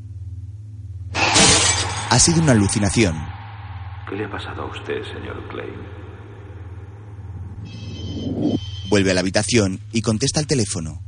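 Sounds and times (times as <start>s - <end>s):
low pulsing hum: 0.0s - 11.0s
mirror shattering as a head hits it: 1.2s - 2.4s
speech: 2.1s - 3.3s, 4.1s - 6.0s, 8.4s - 11.0s.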